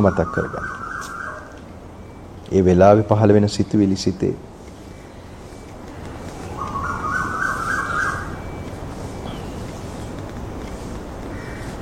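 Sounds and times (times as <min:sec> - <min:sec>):
speech: 0:00.0 - 0:00.8, 0:02.5 - 0:04.5
bird calling with a raspy chattering burst: 0:00.0 - 0:01.6, 0:04.8 - 0:09.7
crow calling: 0:00.0 - 0:01.6, 0:04.8 - 0:08.6, 0:11.3 - 0:11.7
constant low hiss: 0:01.6 - 0:11.7.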